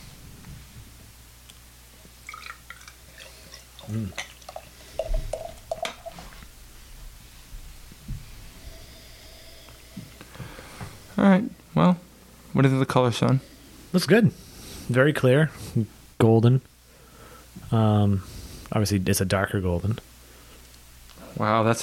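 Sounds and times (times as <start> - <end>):
low hum: 0.0 - 21.8
fizzy crackle of beer: 2.0 - 6.5
filtered beer pouring from a bottle into a glass: 2.2 - 6.4
speech: 3.9 - 4.3, 12.6 - 16.7, 17.7 - 20.1, 21.4 - 21.8.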